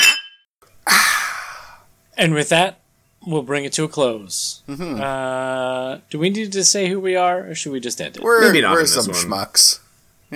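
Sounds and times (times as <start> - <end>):
glasses clinking in a toast: 0.0 - 0.4
speech: 2.2 - 9.8.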